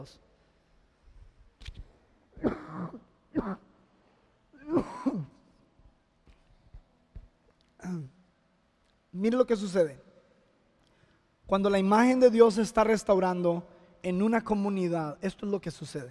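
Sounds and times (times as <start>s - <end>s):
speech: 0.0s - 0.3s, 2.4s - 3.7s, 7.9s - 8.1s, 9.2s - 10.0s, 11.5s - 16.0s
man clearing his throat during a church sermon: 2.4s - 3.8s, 4.6s - 5.5s
man coughing during a church sermon: 2.4s - 3.8s, 4.6s - 5.5s.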